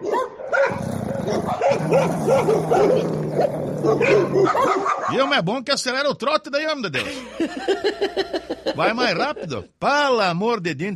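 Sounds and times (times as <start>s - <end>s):
human voice imitating a pack of stray dogs barking on an avenue: 0.6s - 5.2s
speech: 1.3s - 10.9s
laughter: 7.0s - 9.5s.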